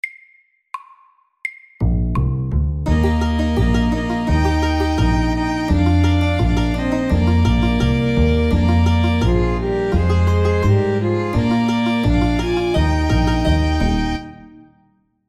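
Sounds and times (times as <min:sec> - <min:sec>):
medium-tempo country and western music: 0:02.8 - 0:14.7.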